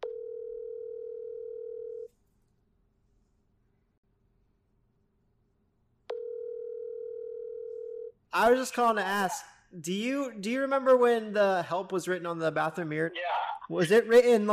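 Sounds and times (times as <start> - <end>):
telephone tone during a phone call: 0.0 - 2.1, 6.1 - 8.1
speech: 8.4 - 14.5.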